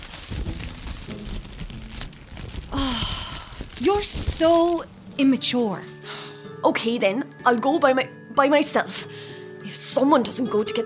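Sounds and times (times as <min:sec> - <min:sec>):
plastic bag crinkled and crumpled to mimic a burning fire torch: 0:00.0 - 0:06.1
speech: 0:03.8 - 0:06.0, 0:06.6 - 0:09.3, 0:10.0 - 0:10.8.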